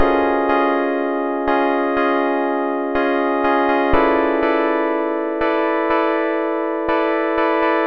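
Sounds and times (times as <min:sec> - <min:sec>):
chord progression at 122 BPM in F major and F minor: 0:00.0 - 0:07.0.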